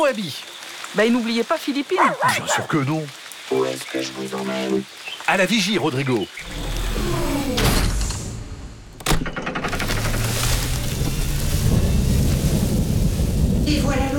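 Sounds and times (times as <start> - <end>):
speech: 0.0 - 6.6
heavy rain: 0.0 - 8.3, 9.6 - 14.1
low rolling thunder rumbles: 10.8 - 14.1.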